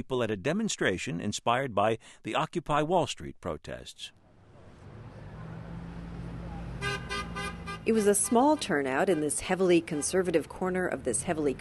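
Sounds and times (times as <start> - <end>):
speech: 0.0 - 4.2, 7.9 - 11.5
low rumble of passing traffic: 4.2 - 11.5
car horns honking in support of a demonstration: 6.2 - 10.4.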